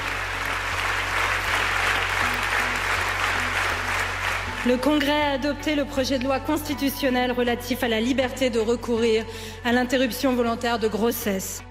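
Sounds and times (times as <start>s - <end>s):
sustained applause of many hands in a parliamentary chamber: 0.0s - 5.1s
speech: 4.6s - 11.6s.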